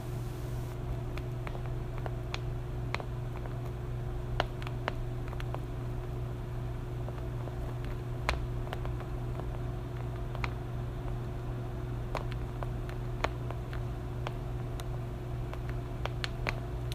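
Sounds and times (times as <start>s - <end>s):
top layer crackle: 0.1s - 16.9s.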